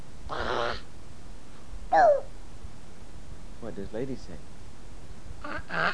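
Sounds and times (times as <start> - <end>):
small child imitating a dog: 1.9 - 2.3
speech: 3.8 - 4.6, 5.4 - 5.9.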